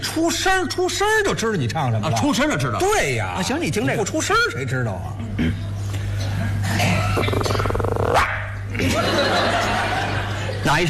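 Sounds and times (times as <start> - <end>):
steady low hum: 0.0 - 10.8
speech: 0.2 - 5.6, 10.7 - 10.8
man's voice mimicking a small dog yapping: 8.0 - 8.6
laughter: 8.7 - 10.8.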